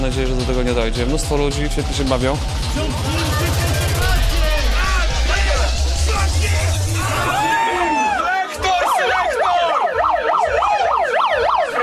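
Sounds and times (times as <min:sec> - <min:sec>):
speech: 0:00.0 - 0:03.7
busy crowd murmur: 0:02.8 - 0:11.8
police car siren wailing and yelping: 0:03.0 - 0:11.8.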